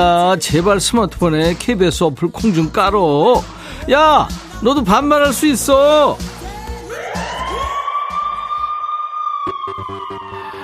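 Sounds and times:
speech: 0.0s - 6.4s
emergency vehicle siren wailing: 6.9s - 10.6s.

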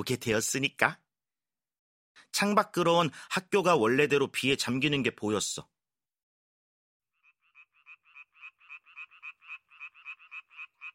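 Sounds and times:
speech: 0.0s - 1.0s, 2.3s - 5.7s
frogs croaking: 7.0s - 10.9s.

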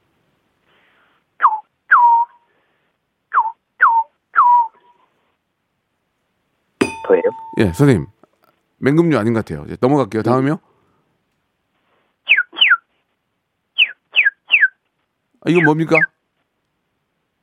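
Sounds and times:
person imitating a scops owl call with whistled hoots: 1.4s - 2.5s, 3.3s - 5.1s, 12.3s - 12.8s, 13.8s - 14.8s, 15.5s - 16.1s
speech: 7.1s - 8.2s, 8.8s - 10.7s, 15.4s - 16.1s.

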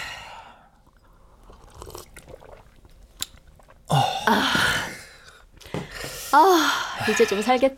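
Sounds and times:
person gulping down a drink after a toast: 0.7s - 5.7s
speech: 4.3s - 4.6s, 7.1s - 7.7s.

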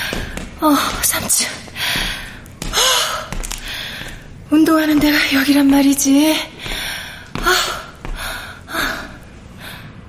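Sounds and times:
speech: 0.6s - 1.7s, 4.5s - 6.5s, 7.5s - 7.8s
person panting heavily after climbing stairs: 1.8s - 4.3s, 6.6s - 9.9s.

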